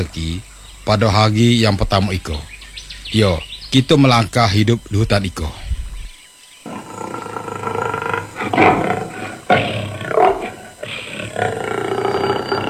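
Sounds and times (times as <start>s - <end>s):
speech: 0.0s - 2.5s, 3.1s - 5.6s
tiger roaring: 6.7s - 12.6s.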